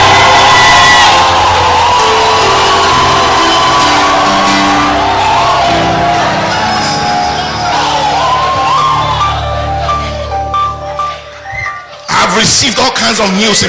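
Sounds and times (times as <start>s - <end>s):
sharp whoops: 0.0s - 9.6s, 11.3s - 12.0s
large audience shouting and cheering: 0.0s - 13.6s
speech: 12.4s - 13.6s.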